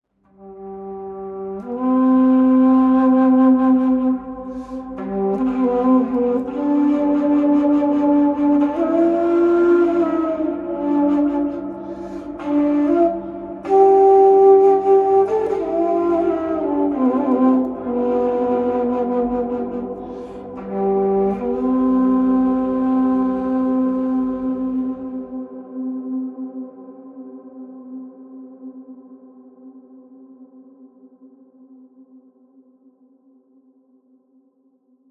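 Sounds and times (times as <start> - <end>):
shankh conch shell blowing: 0.3 - 28.0.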